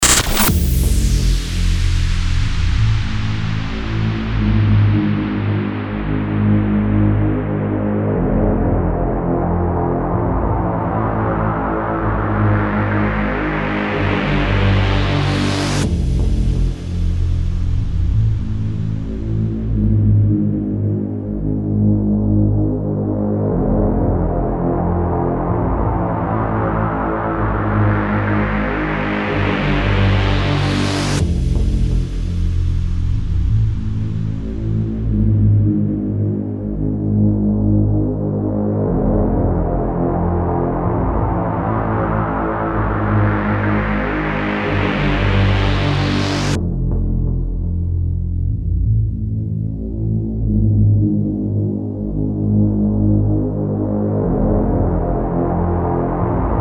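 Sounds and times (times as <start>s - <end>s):
drone: 0.0s - 56.5s.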